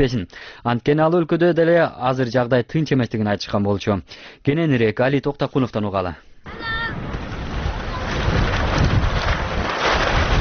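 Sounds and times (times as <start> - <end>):
speech: 0.0 - 6.7
strong wind flapping colourful refugee tents in a camp: 6.5 - 10.3.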